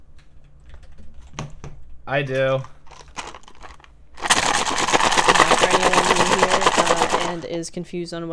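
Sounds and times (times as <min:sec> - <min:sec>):
speech: 0:02.1 - 0:02.8, 0:07.3 - 0:08.3
dice rolling and tumbling: 0:02.9 - 0:07.4.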